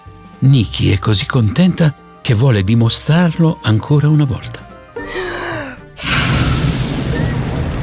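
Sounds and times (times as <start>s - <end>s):
speech: 0.4s - 4.6s
dragon breathing out a big burst of fire: 5.2s - 7.1s.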